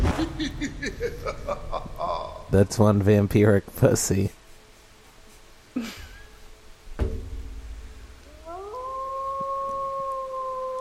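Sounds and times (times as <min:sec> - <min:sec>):
laughter: 0:00.1 - 0:02.5
speech: 0:00.2 - 0:01.8, 0:02.5 - 0:04.4
sharp thumps: 0:06.9 - 0:08.4
wolf howling: 0:08.2 - 0:10.7.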